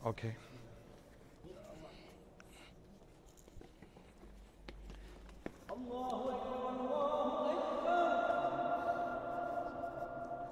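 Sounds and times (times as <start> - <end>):
speech: 0.0 - 0.5, 5.8 - 7.3
man chanting a short phrase inside a domed stone tomb: 5.7 - 10.4.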